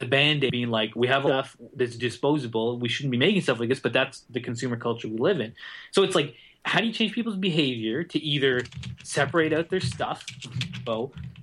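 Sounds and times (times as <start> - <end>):
speech: 0.0 - 11.4
loud computer keyboard typing: 8.4 - 11.4.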